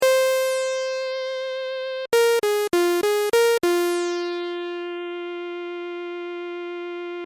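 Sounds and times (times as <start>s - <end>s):
final credits synth music: 0.0s - 6.8s.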